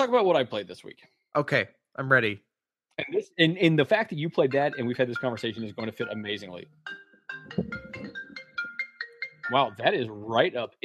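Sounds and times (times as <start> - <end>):
speech: 0.0 - 7.8, 9.5 - 10.8
mobile phone ringtone for an incoming call: 4.5 - 9.9.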